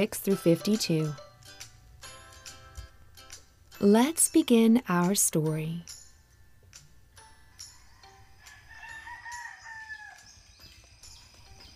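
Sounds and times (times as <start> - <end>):
speech: 0.0 - 1.2, 3.8 - 6.0
rooster crowing: 7.4 - 10.5.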